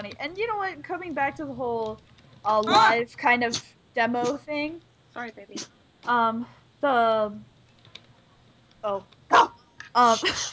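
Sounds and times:
speech: 0.0s - 7.5s, 8.8s - 10.5s
startled dog barking sharply: 9.3s - 9.6s.

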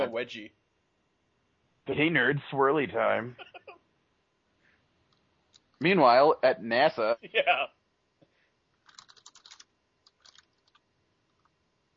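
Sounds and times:
speech: 0.0s - 0.6s, 1.8s - 3.6s, 5.8s - 7.8s
clicky typing on a computer keyboard: 8.8s - 10.8s.

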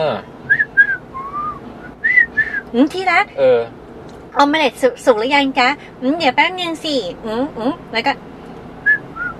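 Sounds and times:
speech: 0.0s - 0.4s, 2.7s - 3.8s, 4.4s - 8.3s
person polishing a shield whistling a tune: 0.5s - 2.6s, 8.9s - 9.3s.

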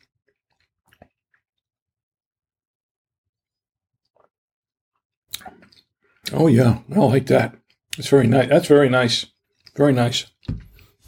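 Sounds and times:
wet chewing of a bite of steak: 0.0s - 1.4s
speech: 5.7s - 10.6s.

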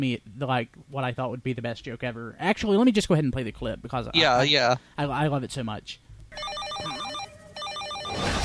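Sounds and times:
speech: 0.0s - 7.0s
telephone ringing with electronic trilling tones: 6.3s - 8.3s.

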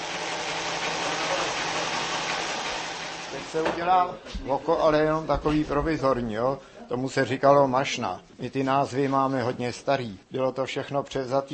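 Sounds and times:
rope-making machine whirring and rattling: 0.0s - 3.8s
speech: 3.5s - 11.5s.

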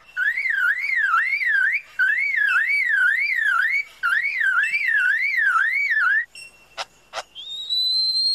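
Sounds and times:
car alarm rising-and-falling siren sweeps: 0.2s - 6.3s.

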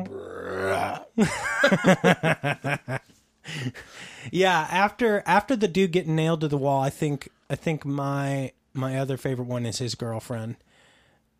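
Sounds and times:
long deep deliberate belch into the microphone: 0.0s - 1.2s
rhythmic breathy bursts of laughter: 1.2s - 3.9s
speech: 1.2s - 10.7s.

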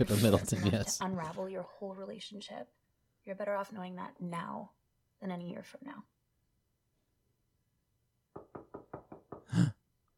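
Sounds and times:
speech: 0.0s - 6.1s
sharp knocks on a door: 8.3s - 9.6s.

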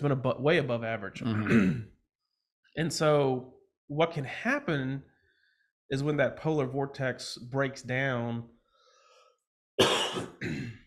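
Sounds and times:
speech: 0.0s - 2.0s, 2.8s - 5.1s, 5.9s - 8.6s
person with a lingering winter cough coughing harshly: 1.3s - 1.9s, 9.8s - 10.8s.

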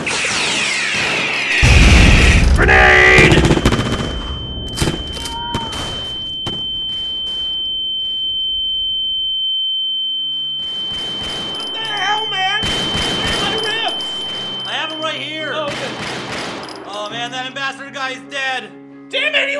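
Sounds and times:
video game gunfire in dense loud bursts and sharp isolated shots: 0.0s - 7.6s, 10.6s - 15.0s, 15.7s - 16.8s
steady high-pitched ringing tone: 3.2s - 15.7s.

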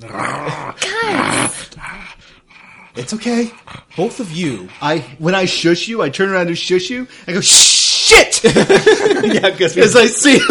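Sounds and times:
speech: 0.0s - 2.4s, 3.0s - 10.4s
animal growling and whining: 0.0s - 5.0s
laughter: 8.4s - 10.4s.

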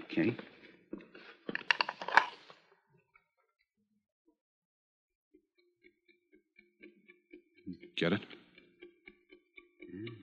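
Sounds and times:
speech: 0.2s - 0.5s, 8.0s - 8.4s
watch ticking inside a package heard through a stethoscope: 5.4s - 10.2s.

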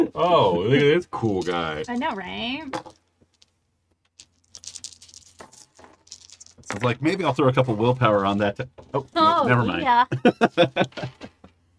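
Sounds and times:
speech: 0.0s - 3.0s, 6.7s - 11.3s
dice clattering across a hard tabletop: 1.2s - 9.8s
laughter: 9.5s - 11.4s.

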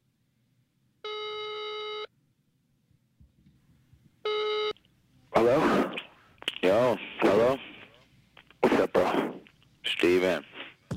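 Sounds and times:
faint low hiss: 0.0s - 10.9s
phone ringback tone on the line: 1.0s - 2.1s, 4.2s - 4.8s.

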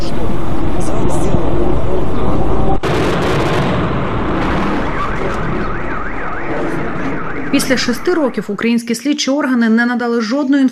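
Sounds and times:
indistinct commotion: 0.0s - 8.9s
fighter jet circling over Luhansk: 0.2s - 8.3s
explosions and rumbling blasts in the centre of Luhansk: 1.0s - 8.6s
speech: 7.5s - 10.7s.

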